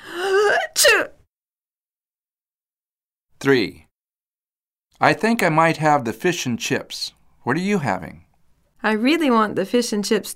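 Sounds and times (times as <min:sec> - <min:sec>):
person sneezing: 0:00.2 - 0:01.2
speech: 0:03.4 - 0:03.9, 0:05.0 - 0:08.2, 0:08.8 - 0:10.3.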